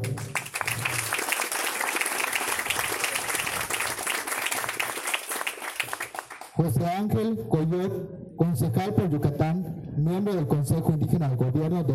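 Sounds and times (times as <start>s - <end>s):
audience applause: 0.0s - 6.6s
speech: 6.6s - 11.9s.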